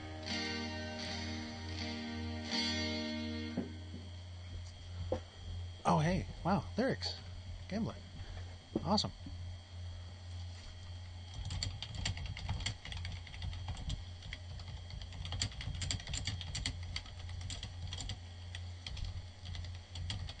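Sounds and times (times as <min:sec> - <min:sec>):
low steady hum: 0:00.0 - 0:20.3
speech: 0:06.0 - 0:08.1, 0:08.8 - 0:09.3
typing on a very noisy computer keyboard: 0:11.3 - 0:20.3.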